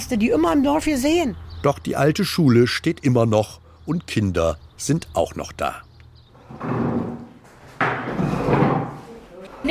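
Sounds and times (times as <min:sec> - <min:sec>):
speech: 0:00.0 - 0:05.9, 0:06.5 - 0:07.0
wooden chairs lifted down from tables thumping and scraping: 0:06.4 - 0:09.0.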